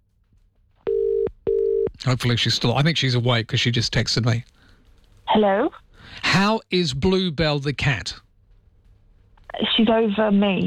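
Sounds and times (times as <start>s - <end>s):
telephone tone beep while calling someone: 0.9s - 1.9s
speech: 2.0s - 4.6s, 5.3s - 8.2s, 9.7s - 10.6s.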